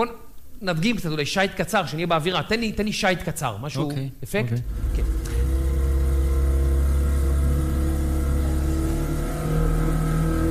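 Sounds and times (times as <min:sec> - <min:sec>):
speech: 0:00.0 - 0:05.1
motorboat engine droning: 0:04.6 - 0:10.4.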